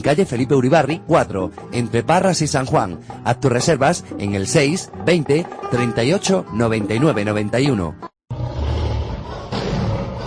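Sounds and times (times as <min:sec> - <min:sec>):
speech: 0:00.0 - 0:08.1
circus tigers roaring: 0:08.3 - 0:10.2.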